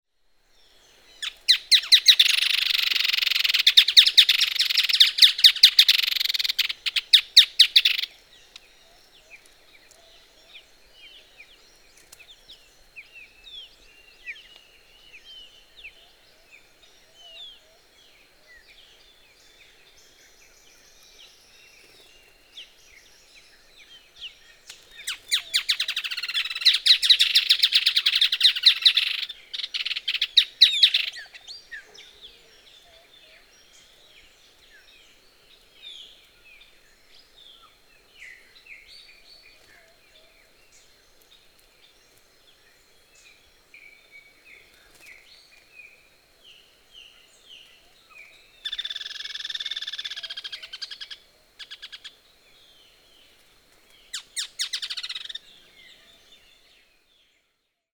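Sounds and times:
Striated softtail: 1.2 - 8.2, 24.7 - 33.5, 47.6 - 52.2, 54.1 - 56.4.

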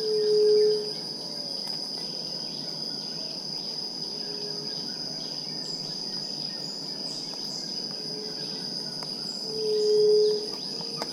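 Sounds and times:
shrill insect hum: 0.0 - 11.1
White-tipped dove hooting call: 9.5 - 11.1.

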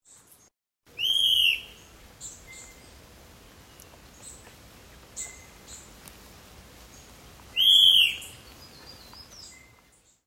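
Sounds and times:
Mackenziaena bird call: 1.0 - 1.8, 7.6 - 9.8.

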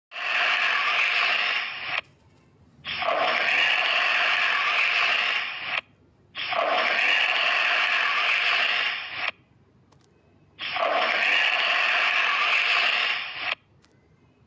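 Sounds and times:
Bengal monitor: 0.1 - 2.0, 2.8 - 9.4, 10.6 - 13.6.

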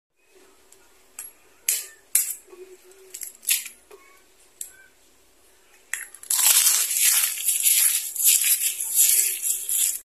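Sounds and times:
egg shell: 6.0 - 10.0.

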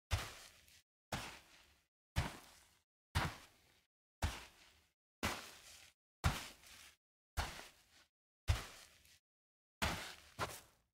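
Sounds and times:
slow footsteps on sand: 0.1 - 9.2, 9.8 - 10.9.

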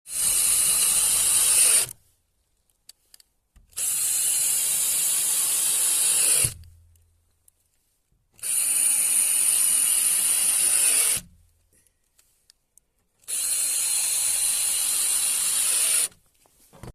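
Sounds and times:
screwdriver: 0.1 - 1.9, 3.7 - 6.7, 8.4 - 11.3, 13.2 - 16.2.

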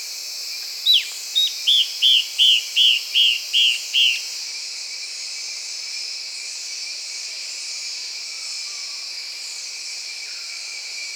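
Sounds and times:
Yellow-browed antbird song of short arched whistled notes: 0.9 - 4.3.

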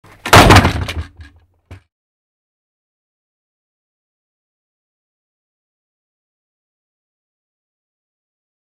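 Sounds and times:
wooden pallet: 0.0 - 1.9.

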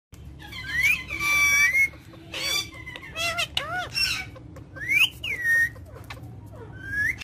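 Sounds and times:
macaw calling: 0.4 - 6.2.

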